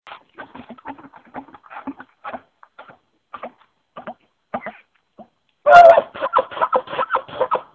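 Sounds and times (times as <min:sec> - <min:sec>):
glunk chuckle: 0:06.1 - 0:07.7.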